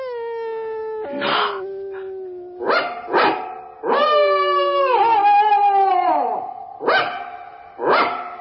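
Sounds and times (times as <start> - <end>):
Scottish terrier howling at night in the yard of a house: 1.0 - 3.2, 3.9 - 6.6
Scottish terrier short sharp barks: 1.1 - 1.6, 2.7 - 4.0, 6.8 - 8.3.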